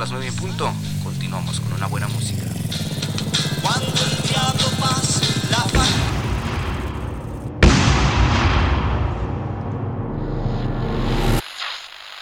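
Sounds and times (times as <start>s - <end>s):
speech: 0.1s - 4.1s
gunfire during an armed attack on a community radio station: 2.7s - 11.4s.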